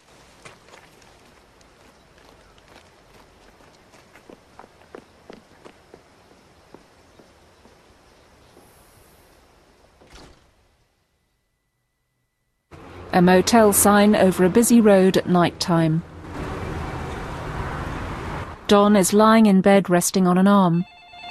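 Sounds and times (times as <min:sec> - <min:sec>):
footsteps of a person jogging away along a path: 0:00.0 - 0:07.9
constant hiss: 0:03.4 - 0:12.6
speech: 0:13.2 - 0:16.1, 0:18.7 - 0:20.9.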